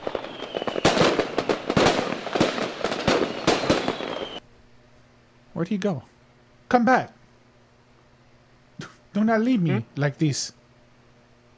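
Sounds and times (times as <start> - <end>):
faint high whistle of fireworks: 0.0 - 1.6, 3.2 - 4.5
fireworks crackling and popping: 0.0 - 4.4
speech: 5.6 - 6.1, 6.7 - 7.2, 9.2 - 10.6.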